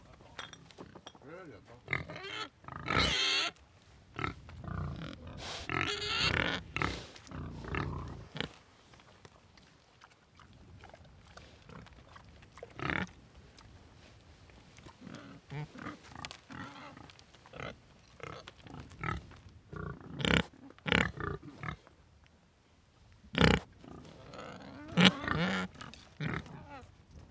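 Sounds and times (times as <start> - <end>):
pigs grunting: 0.0 - 3.6, 4.2 - 8.6, 10.6 - 13.8, 14.8 - 21.9, 23.3 - 26.9
pigs squealing: 1.9 - 3.6, 4.2 - 8.5, 24.4 - 26.8.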